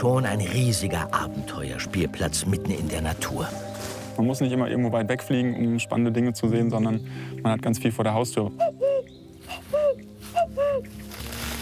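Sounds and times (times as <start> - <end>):
speech: 0.0 - 8.8
faint outdoor rustle: 1.9 - 5.6, 9.3 - 11.5
person imitating a cuckoo in a national park: 8.6 - 10.9.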